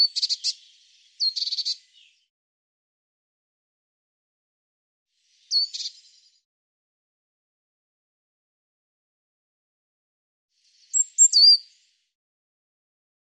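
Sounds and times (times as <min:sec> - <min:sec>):
Eurasian blue tit calls with high thin notes and buzzy elements: 0:00.0 - 0:00.6, 0:01.2 - 0:01.8, 0:05.5 - 0:06.0, 0:10.9 - 0:11.6.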